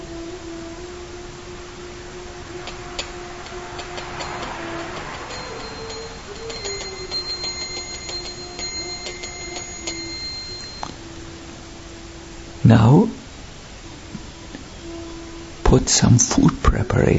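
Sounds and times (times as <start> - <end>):
small hand bell ringing during a worship offering: 3.8 - 11.0
speech: 12.7 - 13.2, 15.9 - 17.1.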